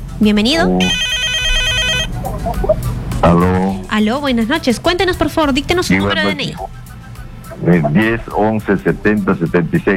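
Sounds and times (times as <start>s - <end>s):
speech: 0.2s - 1.1s, 2.3s - 6.8s, 7.6s - 9.9s
telephone electronic ringtone with an incoming call: 0.8s - 2.8s.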